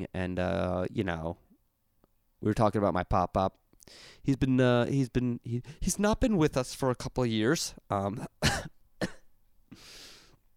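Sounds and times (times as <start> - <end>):
speech: 0.0 - 1.4, 2.4 - 9.1
raspy throat-clearing exhale: 8.2 - 9.3
person coughing into microphone: 8.4 - 9.3.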